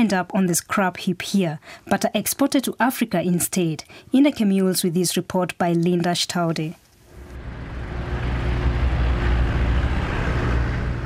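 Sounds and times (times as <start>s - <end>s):
speech: 0.0s - 6.8s
many idling and creeping car engines in a traffic jam on an eight-lane highway: 7.1s - 11.0s.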